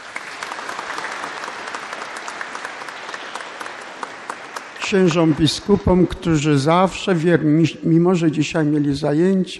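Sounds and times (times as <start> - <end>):
sizable audience applauding in a reverberant church hall: 0.0 - 6.5
speech: 4.9 - 9.5.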